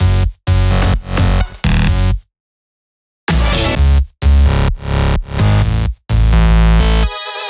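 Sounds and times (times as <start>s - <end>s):
bass line with root F#: 0.0s - 2.2s, 3.3s - 7.1s.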